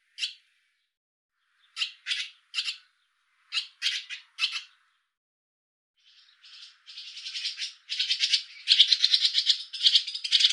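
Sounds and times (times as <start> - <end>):
barn swallow harsh squeaky chirps: 1.7 - 2.9, 3.5 - 4.8, 6.1 - 10.5.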